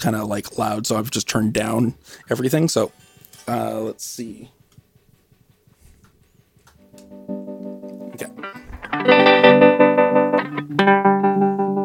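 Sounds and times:
speech: 0:00.0 - 0:04.6
prototype synthesizer module playing ramp-down wave polyrhythm: 0:06.8 - 0:11.8.

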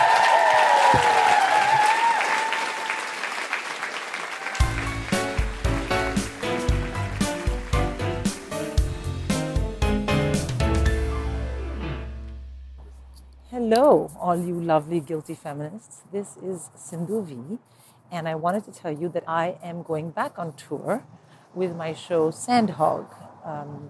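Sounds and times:
crowd whooping and cheering: 0:00.0 - 0:06.2
large audience applause: 0:00.0 - 0:08.8
rhythmic music: 0:04.6 - 0:13.2
speech: 0:13.7 - 0:23.8.

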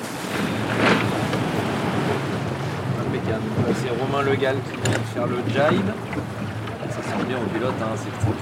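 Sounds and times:
waves sloshing around a sailing boat at sea: 0:00.0 - 0:08.4
wind around a sailing boat at sea: 0:00.0 - 0:08.4
speech: 0:03.3 - 0:06.4, 0:07.2 - 0:08.4.

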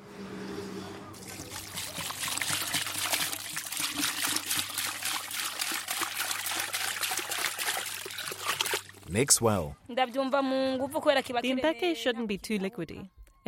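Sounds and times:
boiled water poured into a bowl of sorghum flour: 0:01.2 - 0:09.0
speech: 0:09.2 - 0:13.4.

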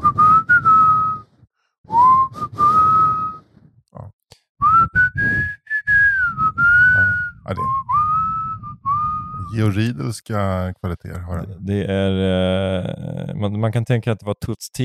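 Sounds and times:
person whistling a slow ballad melody: 0:00.0 - 0:01.3, 0:01.9 - 0:03.5, 0:04.6 - 0:09.5
speech: 0:09.6 - 0:14.8.

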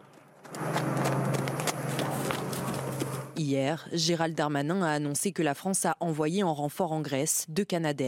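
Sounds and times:
several horses' hooves clip-clopping while being evacuated: 0:00.0 - 0:03.4
steady low hum: 0:00.0 - 0:04.9
speech: 0:03.4 - 0:08.0.

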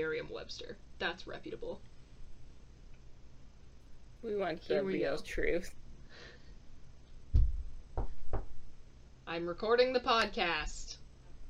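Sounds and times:
speech: 0:00.0 - 0:02.0, 0:04.2 - 0:06.4, 0:09.3 - 0:11.0
knocking on a bedroom door: 0:07.3 - 0:08.6.

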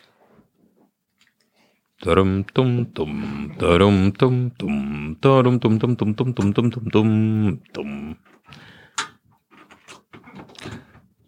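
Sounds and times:
speech: 0:02.0 - 0:08.6
scraping and plastic handling of a plug at a wall socket: 0:09.0 - 0:11.2.

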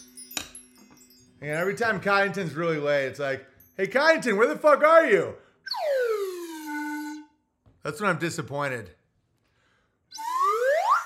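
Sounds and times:
speech: 0:01.4 - 0:05.4, 0:07.9 - 0:09.0
slide whistle rising: 0:05.7 - 0:07.4, 0:10.1 - 0:11.0.

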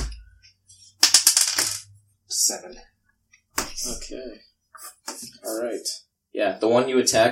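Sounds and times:
two six-sided dice rattling across a table during a tabletop game: 0:01.0 - 0:01.9
speech: 0:02.4 - 0:03.0, 0:03.8 - 0:04.5, 0:05.2 - 0:07.3.

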